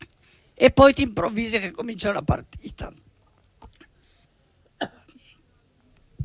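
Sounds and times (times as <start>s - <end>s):
speech: 0.6s - 3.1s
short raspy coughs: 4.8s - 5.4s.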